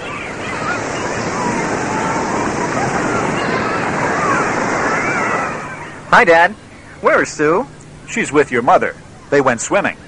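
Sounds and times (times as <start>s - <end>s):
ocean waves washing onto an Atlantic beach: 0.0s - 7.6s
speech: 6.1s - 10.0s.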